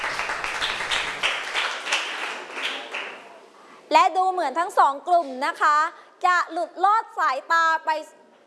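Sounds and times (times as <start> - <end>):
room full of people clapping: 0.0 - 3.4
speech: 3.9 - 8.4.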